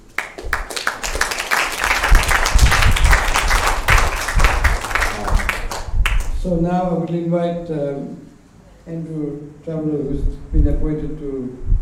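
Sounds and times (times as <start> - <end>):
room full of people applauding: 0.0 - 6.4
speech: 6.4 - 11.8.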